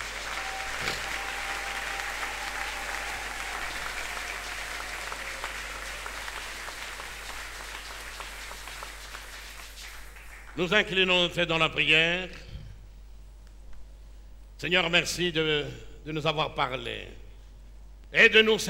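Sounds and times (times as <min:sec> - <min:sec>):
church congregation applauding: 0:00.0 - 0:10.9
speech: 0:10.6 - 0:12.4, 0:14.6 - 0:17.2, 0:18.1 - 0:18.6.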